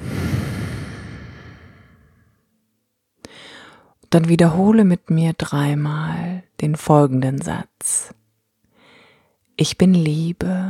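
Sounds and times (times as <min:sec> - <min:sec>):
deep breath out: 0:00.0 - 0:02.4, 0:03.2 - 0:03.9, 0:08.7 - 0:09.4
speech: 0:04.1 - 0:08.2, 0:09.6 - 0:10.6.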